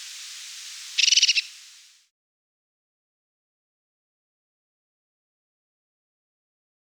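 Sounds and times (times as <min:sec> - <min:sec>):
crested tit giving a quick purring trill: 0:00.0 - 0:01.9.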